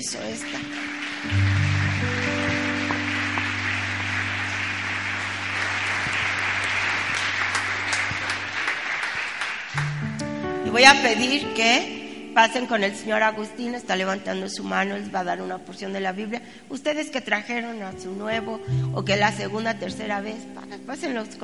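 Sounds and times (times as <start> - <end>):
speech: 0.0 - 2.2, 10.8 - 21.4
audience applauding: 0.0 - 11.2
low organ or keyboard chords: 0.0 - 16.2, 17.9 - 21.4.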